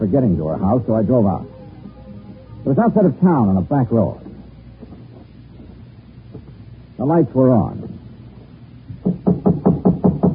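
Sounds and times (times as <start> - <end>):
speech: 0.1 - 1.5, 2.6 - 4.2, 7.0 - 7.9
knocking on a house door: 8.9 - 10.3.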